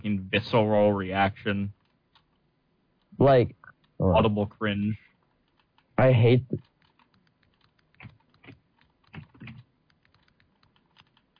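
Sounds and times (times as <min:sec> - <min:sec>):
speech: 0:00.0 - 0:01.8, 0:03.2 - 0:05.0, 0:06.0 - 0:06.7
fingers typing on a computer keyboard: 0:01.7 - 0:02.5, 0:05.0 - 0:06.0, 0:06.6 - 0:11.3.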